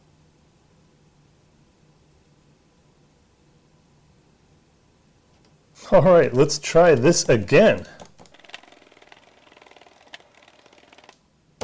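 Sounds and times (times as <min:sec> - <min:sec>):
speech: 0:05.8 - 0:08.0
keyboard keys clacking: 0:06.2 - 0:09.2.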